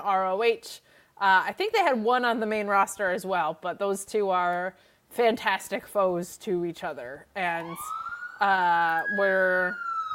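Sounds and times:
speech: 0:00.0 - 0:09.9
police siren wailing: 0:07.6 - 0:10.1.

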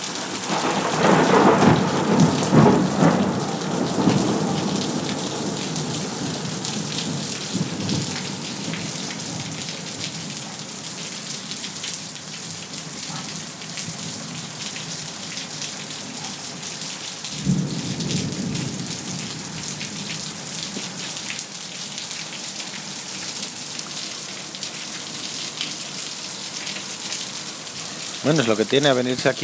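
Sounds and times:
rain falling steadily on a terrace: 0:00.0 - 0:29.4
thunder rumbling: 0:00.4 - 0:10.2, 0:17.4 - 0:21.0
speech: 0:28.3 - 0:29.4.

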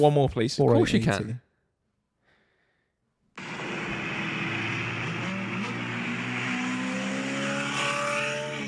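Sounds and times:
speech: 0:00.0 - 0:01.4
Maserati car passing with turbo noise: 0:03.4 - 0:08.6.

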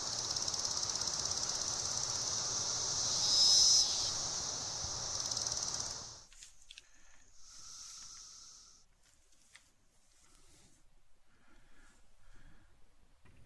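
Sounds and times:
chorus of periodical cicadas during hatch-out in Alabama: 0:00.0 - 0:06.3, 0:06.9 - 0:08.8.

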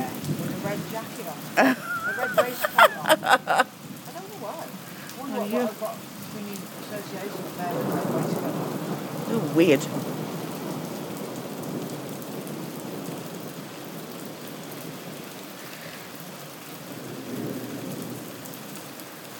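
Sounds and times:
low rolling rumble of thunder: 0:00.0 - 0:01.4, 0:05.7 - 0:14.1, 0:16.9 - 0:18.5
heavy rain during a thunderstorm: 0:00.0 - 0:19.3
speech: 0:01.0 - 0:03.7, 0:04.4 - 0:10.2
laughter: 0:01.6 - 0:03.7.

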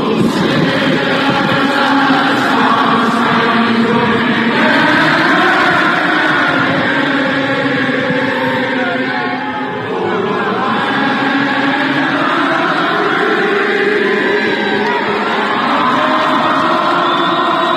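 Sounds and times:
huge stadium crowd singing the national anthem: 0:00.0 - 0:17.7.

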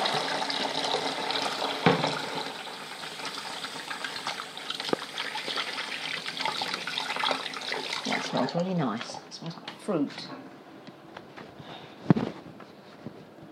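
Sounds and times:
water from a running tap over hands being washed with antibacterial soap: 0:00.0 - 0:10.4
speech: 0:08.5 - 0:10.4.

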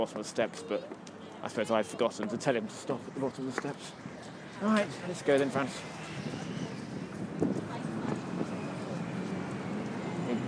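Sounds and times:
speech: 0:00.0 - 0:06.4
trains rumbling across a bridge: 0:02.7 - 0:10.4.

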